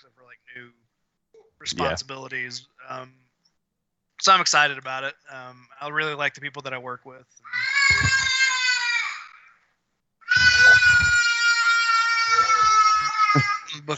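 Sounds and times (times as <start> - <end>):
speech: 0.1 - 3.2, 4.2 - 8.4
baby wailing: 7.5 - 9.4, 10.2 - 13.7.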